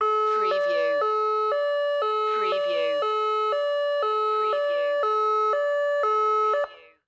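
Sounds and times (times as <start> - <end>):
medical emergency ambulance siren with alternating beeps: 0.0 - 7.0.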